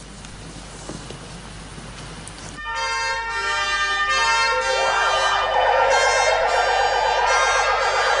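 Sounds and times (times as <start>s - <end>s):
emergency vehicle sirens wailing in tribute to firefighters who died: 2.6s - 8.1s.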